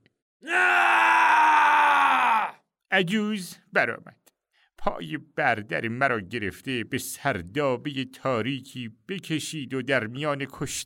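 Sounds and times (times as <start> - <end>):
man letting out a loud sustained cry: 0.4 - 2.6
speech: 3.0 - 4.2, 4.8 - 10.8.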